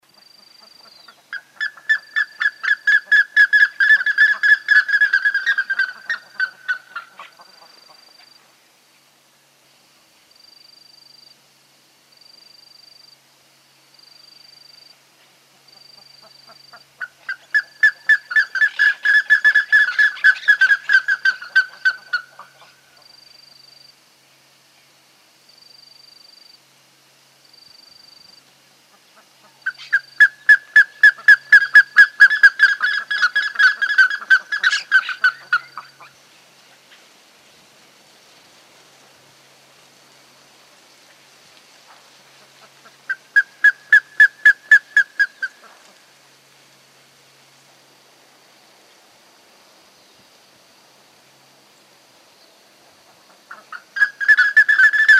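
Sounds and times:
Plumbeous ibis calling: 0.1s - 9.1s, 14.0s - 23.8s, 27.6s - 37.1s, 41.9s - 46.5s, 52.3s - 55.1s.

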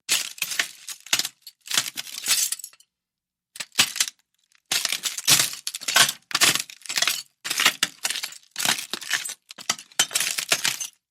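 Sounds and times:
footsteps on glass: 0.1s - 2.8s, 3.6s - 11.0s.

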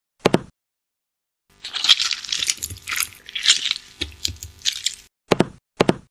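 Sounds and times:
toothpaste: 1.6s - 5.1s.

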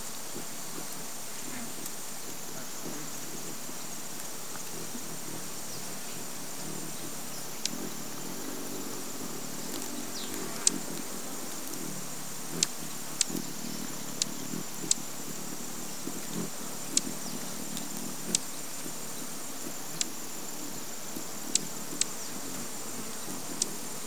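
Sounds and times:
steady high insect drone: 0.0s - 24.0s
horned sungem giving sharp high ticking calls: 9.6s - 11.1s, 12.5s - 15.1s, 16.3s - 18.6s, 19.9s - 20.2s.

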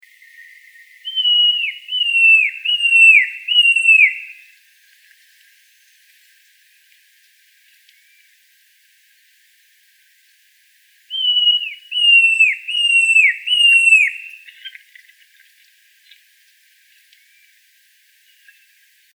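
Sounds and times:
Babax lanceolatus calling: 0.2s - 4.6s, 11.1s - 16.2s.

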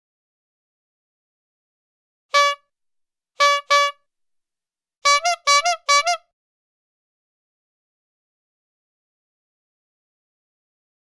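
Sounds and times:
pumped bicycle horn: 2.3s - 2.7s, 3.4s - 4.0s, 5.0s - 6.3s.

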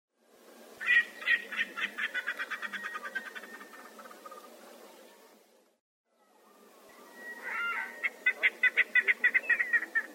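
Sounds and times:
Erckel's spurfowl calling: 0.8s - 4.6s, 7.1s - 10.1s.

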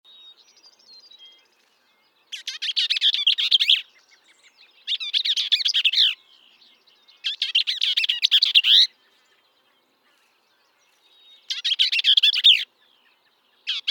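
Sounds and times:
Bell's vireo buzzy chattering song bursts: 2.3s - 6.2s, 7.2s - 8.9s, 11.3s - 12.7s, 13.6s - 13.8s.

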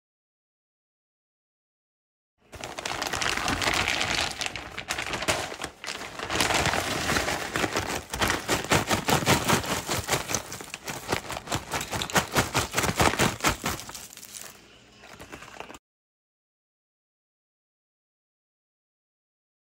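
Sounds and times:
pack of chips rustling: 2.6s - 15.8s.

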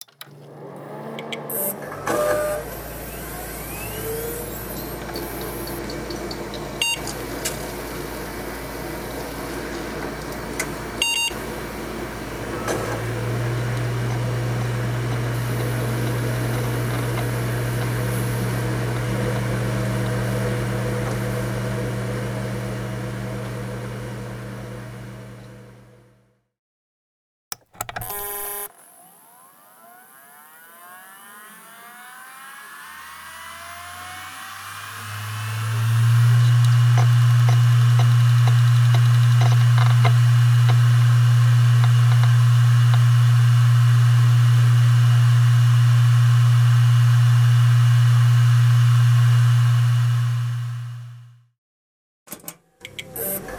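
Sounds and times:
computer fan: 0.1s - 26.0s, 27.8s - 51.3s.

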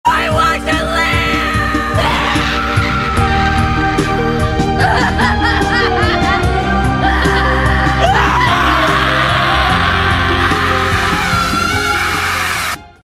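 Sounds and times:
anime screams: 1.0s - 4.1s, 8.0s - 12.8s
laughter: 2.0s - 12.4s.

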